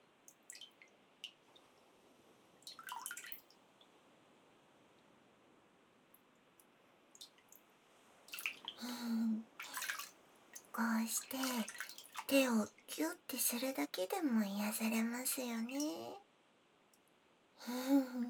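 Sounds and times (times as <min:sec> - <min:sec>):
hot water scooped and poured over hands being washed: 0:08.3 - 0:12.6
speech: 0:11.2 - 0:16.2, 0:17.6 - 0:18.2.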